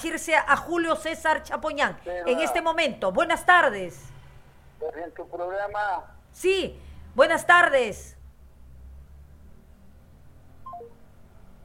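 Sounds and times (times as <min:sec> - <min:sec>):
speech: 0:00.0 - 0:04.2, 0:04.8 - 0:08.2
telephone call cut-off descending electronic tones: 0:10.7 - 0:11.1.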